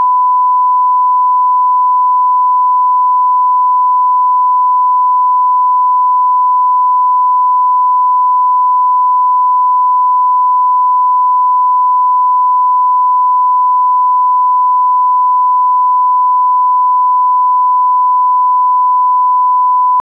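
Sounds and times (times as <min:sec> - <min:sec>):
1000 Hz sine tone: 0:00.0 - 0:20.0.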